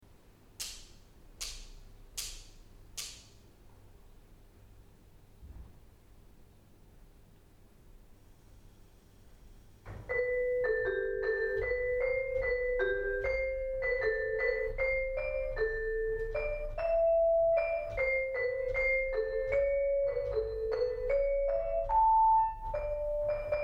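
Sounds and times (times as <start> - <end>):
vibraphone: 10.1 - 23.6.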